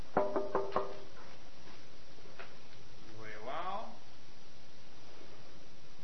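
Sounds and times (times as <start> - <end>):
quick sharp knocks on a pretend door: 0.1 - 1.0.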